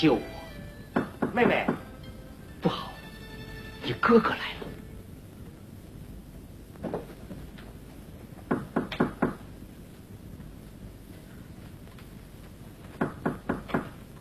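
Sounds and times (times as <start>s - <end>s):
speech: 0.0s - 0.3s, 1.4s - 1.8s, 2.6s - 2.9s, 3.8s - 4.7s
low hiss: 0.0s - 14.1s
knocking on a door in a staged traditional Chinese opera scene: 0.9s - 1.9s, 8.5s - 9.4s, 13.0s - 13.9s.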